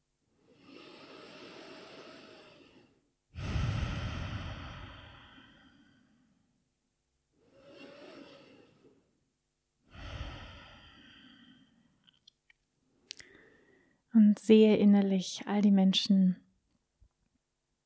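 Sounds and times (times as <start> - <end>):
slow deep breaths in and out: 0.4 - 6.5, 7.4 - 9.2, 9.9 - 12.2, 13.1 - 14.1
speech: 14.2 - 16.4.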